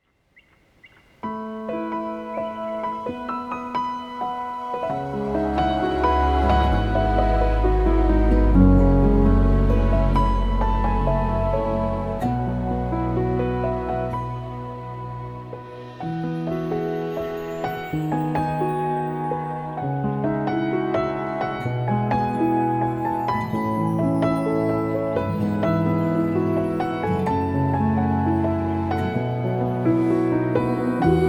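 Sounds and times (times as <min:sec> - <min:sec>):
Petrof grand piano: 0:01.2 - 0:31.2.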